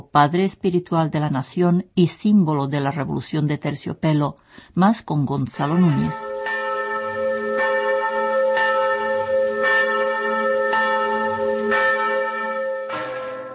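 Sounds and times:
speech: 0.0s - 6.5s
church bells in the Czech Republic ringing after the former president's death: 5.6s - 13.5s.

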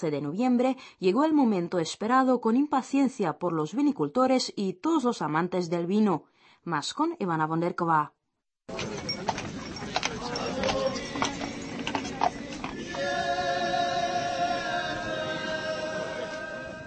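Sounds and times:
speech: 0.0s - 8.9s
white horse hooves clopping on a hard street in Uherské Hradiště: 8.7s - 13.5s
murmuring outdoor crowd in Uherské Hradiště: 8.7s - 16.8s.

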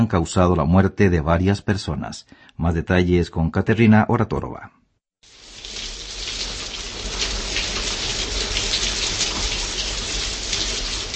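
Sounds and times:
speech: 0.0s - 5.4s
heavy rain drumming on surfaces: 5.3s - 11.1s.

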